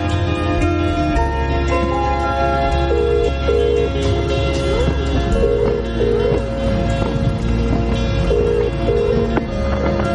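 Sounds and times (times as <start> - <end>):
dense steady music: 0.0 - 10.1
outgoing phone call ringing tone: 2.5 - 6.8, 8.2 - 10.1.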